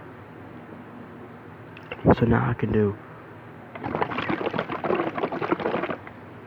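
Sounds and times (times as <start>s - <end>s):
speech: 2.0s - 3.1s
slurping water through a drinking straw: 3.8s - 6.2s.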